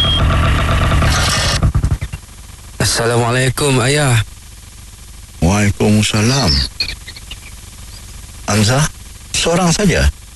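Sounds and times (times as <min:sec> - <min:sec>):
motorcycle engine arriving: 0:00.0 - 0:02.2
speech: 0:03.0 - 0:04.3, 0:05.5 - 0:07.0, 0:08.5 - 0:10.2.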